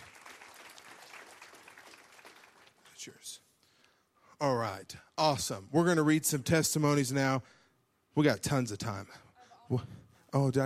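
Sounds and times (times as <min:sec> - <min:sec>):
audience applause at a service: 0:00.0 - 0:03.0
speech: 0:03.0 - 0:03.5, 0:04.4 - 0:07.6, 0:08.2 - 0:10.6.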